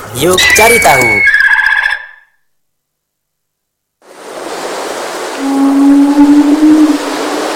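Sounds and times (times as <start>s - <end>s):
speech: 0.2s - 1.4s
deep drawn-out whale moan: 5.4s - 7.5s.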